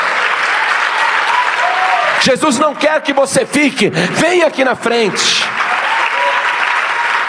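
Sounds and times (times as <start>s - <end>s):
audience applauding: 0.0s - 7.2s
speech: 2.2s - 5.8s.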